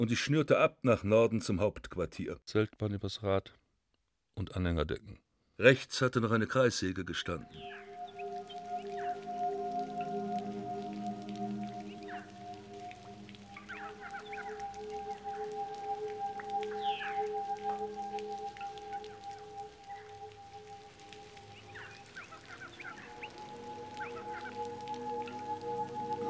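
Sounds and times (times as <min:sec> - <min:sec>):
speech: 0:00.0 - 0:03.6, 0:04.4 - 0:07.8
rain from a brief downpour falling: 0:06.5 - 0:26.2
faint bird calls: 0:07.4 - 0:26.2.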